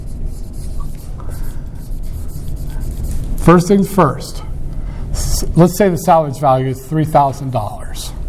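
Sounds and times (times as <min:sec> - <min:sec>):
writing during a business finance lecture: 0:00.0 - 0:03.3
speech: 0:03.4 - 0:04.5, 0:05.5 - 0:07.8.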